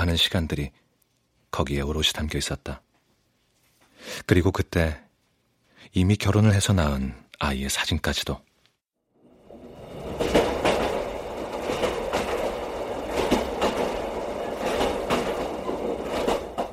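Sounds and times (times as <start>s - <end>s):
speech: 0.0s - 0.8s, 1.5s - 2.8s, 4.0s - 5.0s, 5.8s - 8.5s
train rolling along the rails: 9.2s - 16.7s.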